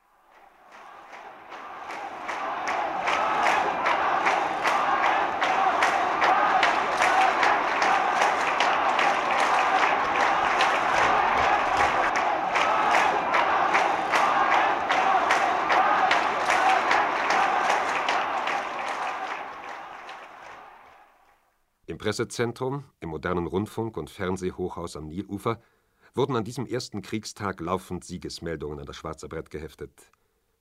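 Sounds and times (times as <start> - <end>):
large jubilant crowd roaring and cheering in city streets: 0.0 - 21.4
people shouting: 0.4 - 21.0
speech: 22.0 - 30.2.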